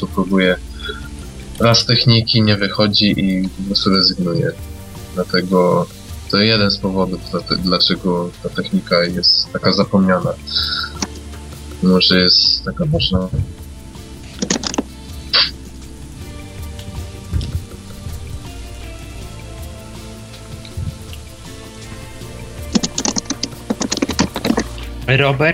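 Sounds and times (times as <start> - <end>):
speech: 0.0 - 1.0, 1.6 - 10.9, 11.8 - 13.6, 25.1 - 25.5
quiet low hum: 0.0 - 8.7, 9.3 - 24.9
typing on a computer keyboard: 14.4 - 14.9, 22.7 - 24.8.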